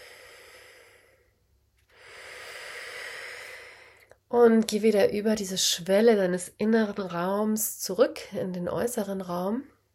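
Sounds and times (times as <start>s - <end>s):
person taking a slow deep breath: 0.0s - 4.1s
speech: 4.4s - 9.7s.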